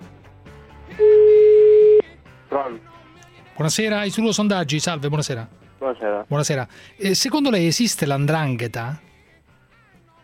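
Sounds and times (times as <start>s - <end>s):
ringback tone on an outgoing phone call: 0.9s - 2.0s
speech: 2.6s - 3.0s, 3.6s - 9.1s.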